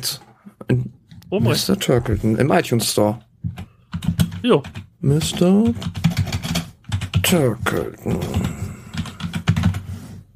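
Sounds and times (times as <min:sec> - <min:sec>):
speech: 0:00.0 - 0:03.6, 0:04.4 - 0:06.0, 0:07.3 - 0:08.4
typing a search on a computer keyboard: 0:03.1 - 0:10.3.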